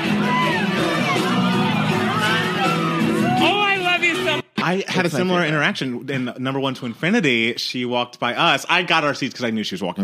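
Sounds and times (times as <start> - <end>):
excited voices shouting and whooping: 0.0 - 4.3
loud dense concert crowd roaring and chattering: 0.0 - 4.5
speech: 4.7 - 10.0.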